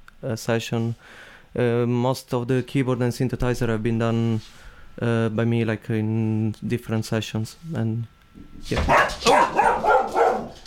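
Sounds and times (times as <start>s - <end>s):
speech: 0.2s - 9.4s
dog barking and yelping in a radio studio: 8.9s - 10.6s.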